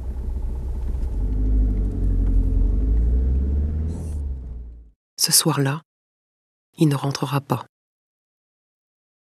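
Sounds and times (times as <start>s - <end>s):
car engine rumbling while driving: 0.0s - 4.9s
speech: 5.2s - 5.9s, 6.8s - 7.7s.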